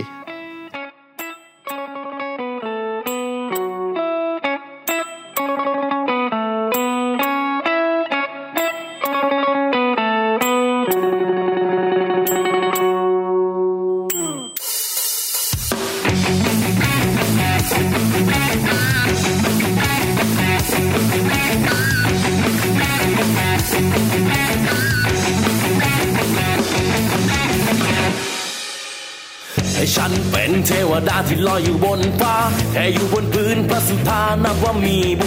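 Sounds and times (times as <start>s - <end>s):
clean bell-like picked guitar notes and held chord: 0.0s - 14.7s, 16.1s - 28.2s
loud dense distorted guitars: 0.0s - 35.2s
heavy metal rock song: 15.6s - 35.2s.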